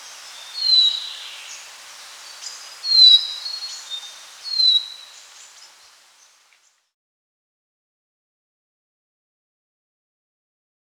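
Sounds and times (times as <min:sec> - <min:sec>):
short-billed minivet calls: 0:00.0 - 0:06.8
background hiss: 0:00.0 - 0:06.9.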